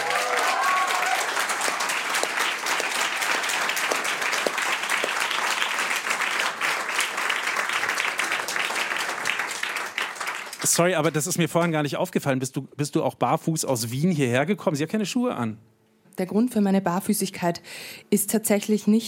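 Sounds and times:
audience applause welcoming a guest cellist and singer-songwriter: 0:00.0 - 0:11.4
speech: 0:10.8 - 0:19.0.

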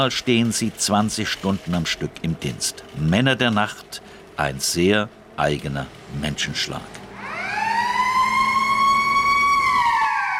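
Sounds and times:
speech: 0:00.0 - 0:07.0
fish market opening siren wailing: 0:07.1 - 0:10.3.

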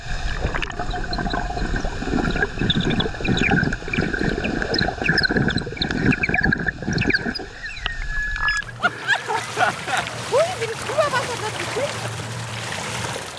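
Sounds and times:
water bubbling and gurgling: 0:00.0 - 0:13.3
flute played underwater recorded by hydrophone: 0:00.8 - 0:09.0
laughter: 0:08.6 - 0:12.2.

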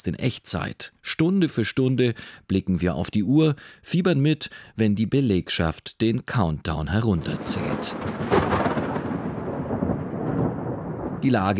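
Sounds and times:
speech: 0:00.0 - 0:08.7, 0:11.2 - 0:11.5
thunder rolling during a violent storm: 0:06.9 - 0:11.5.

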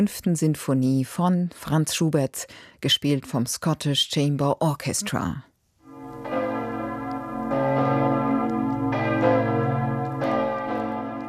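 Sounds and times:
speech: 0:00.0 - 0:05.5
several large monastery church bells ringing: 0:05.8 - 0:11.2.

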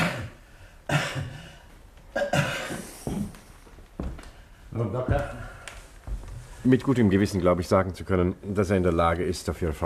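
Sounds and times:
person coughing on command during a medical examination: 0:00.0 - 0:03.4
speech: 0:04.8 - 0:05.4, 0:06.6 - 0:09.8.

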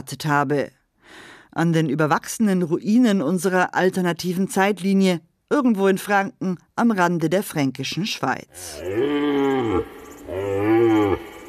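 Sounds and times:
speech: 0:00.0 - 0:10.4
cattle mooing: 0:08.5 - 0:11.4.

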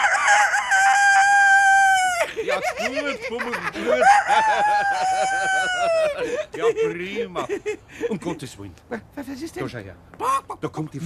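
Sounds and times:
rooster crowing: 0:00.0 - 0:02.4, 0:03.8 - 0:06.4
laughter: 0:02.0 - 0:08.4
speech: 0:02.6 - 0:11.0.

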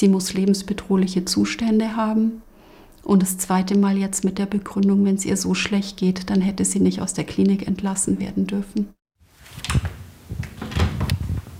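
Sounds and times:
speech: 0:00.0 - 0:09.0
door being opened carefully: 0:09.4 - 0:11.5.

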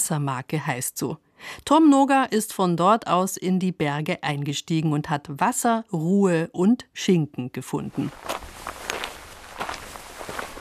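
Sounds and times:
speech: 0:00.1 - 0:08.5
footsteps walking through a Spanish mountain village: 0:07.9 - 0:10.5.

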